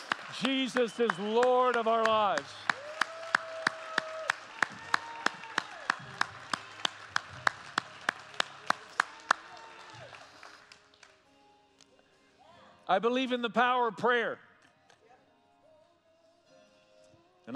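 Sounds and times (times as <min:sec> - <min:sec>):
church service audience clapping in unison: 0:00.0 - 0:11.2
faint music: 0:00.0 - 0:17.5
speech: 0:00.4 - 0:02.7, 0:12.9 - 0:14.5.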